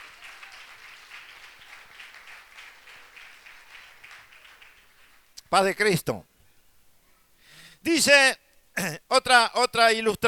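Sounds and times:
faint audience applause at a religious service: 0:00.0 - 0:05.4
speech: 0:05.5 - 0:06.3, 0:07.8 - 0:10.2.

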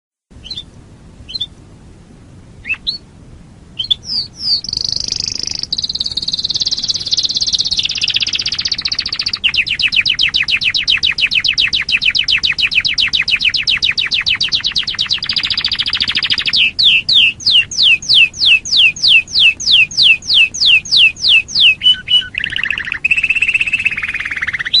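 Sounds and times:
canary singing: 0:00.4 - 0:01.6, 0:02.6 - 0:03.1, 0:03.8 - 0:24.7.

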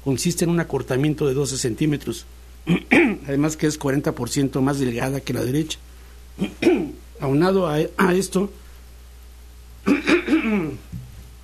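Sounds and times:
speech: 0:00.0 - 0:08.6
person clearing the throat in a dusty booth: 0:02.6 - 0:03.3, 0:06.4 - 0:07.0, 0:09.8 - 0:11.0
person coughing in a dusty booth: 0:02.6 - 0:03.3, 0:06.4 - 0:07.0, 0:09.8 - 0:10.9.

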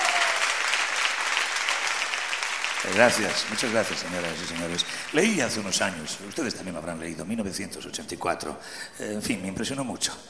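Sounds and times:
concert audience applause: 0:00.0 - 0:07.0
speech: 0:02.8 - 0:10.2.

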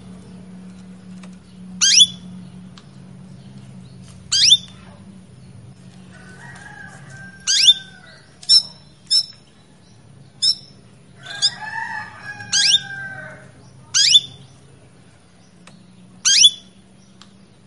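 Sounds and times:
Female Belgian canary in breeding condition calling with sharp, bright chirps: 0:01.7 - 0:02.4, 0:04.0 - 0:04.9, 0:06.2 - 0:14.6, 0:16.2 - 0:16.8.

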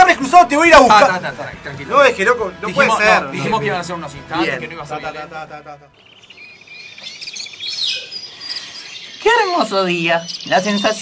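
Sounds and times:
speech: 0:00.4 - 0:06.1, 0:09.2 - 0:11.0
birds chirping and tweeting on a sunny day: 0:04.8 - 0:11.0.

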